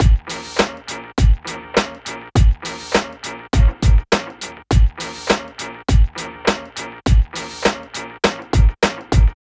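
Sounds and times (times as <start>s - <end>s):
hip hop drum beat: 0.0s - 9.3s.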